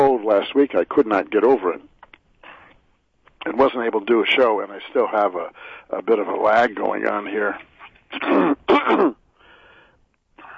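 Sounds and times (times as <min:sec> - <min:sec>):
speech: 0:00.3 - 0:01.9, 0:03.4 - 0:09.2
person clearing throat: 0:08.1 - 0:09.2.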